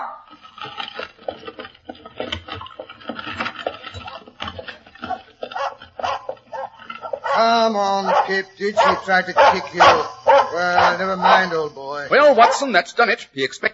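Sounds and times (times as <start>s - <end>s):
dog snarling and barking: 0.0s - 0.4s, 5.0s - 12.7s
speech: 7.4s - 13.7s.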